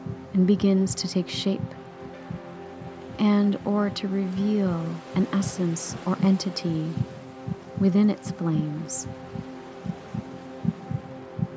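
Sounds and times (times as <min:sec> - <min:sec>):
speech: 0:00.4 - 0:01.8, 0:03.2 - 0:07.2, 0:07.8 - 0:09.3
heartbeat thumps: 0:01.6 - 0:03.2, 0:07.0 - 0:08.0, 0:09.0 - 0:11.5.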